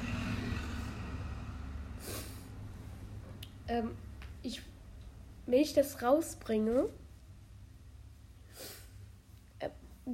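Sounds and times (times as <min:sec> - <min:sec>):
bus engine rumbling outside: 0:00.0 - 0:03.8
speech: 0:03.7 - 0:04.7, 0:05.5 - 0:07.0, 0:09.6 - 0:10.1.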